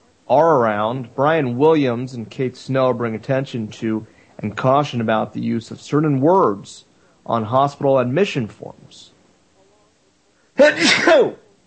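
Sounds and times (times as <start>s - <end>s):
speech: 0.3s - 9.1s, 10.6s - 11.4s
person sneezing: 10.6s - 11.4s.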